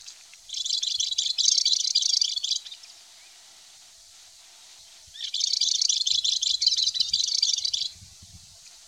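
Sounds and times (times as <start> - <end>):
Balearic warbler: 0.0 - 3.0, 5.1 - 8.6.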